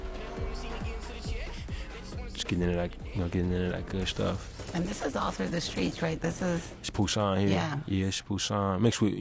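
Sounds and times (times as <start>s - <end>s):
car engines roaring in a street chase: 0.0s - 1.4s
speech: 2.4s - 9.1s.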